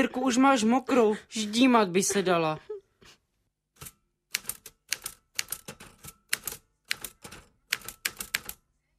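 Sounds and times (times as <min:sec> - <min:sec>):
speech: 0:00.0 - 0:03.2
manual typewriter keystrokes: 0:03.8 - 0:08.6.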